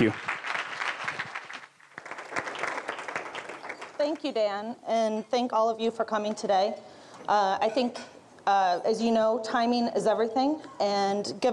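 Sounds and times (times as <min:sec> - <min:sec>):
speech: 0:00.0 - 0:00.3, 0:04.1 - 0:11.5
room full of people applauding: 0:00.0 - 0:04.0.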